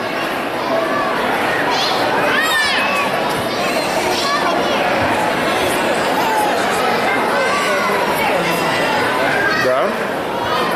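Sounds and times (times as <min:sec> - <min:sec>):
children shouting and squealing: 0:00.0 - 0:10.7
crowd chatter: 0:00.0 - 0:10.7.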